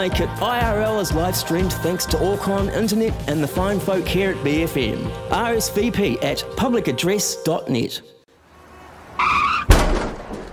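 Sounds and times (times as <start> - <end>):
speech: 0.0 - 8.2
car tire screech while skidding: 8.4 - 10.5
car crashing into a car: 9.2 - 10.5
rumbling rattling aftermath of a car crash: 9.7 - 10.5.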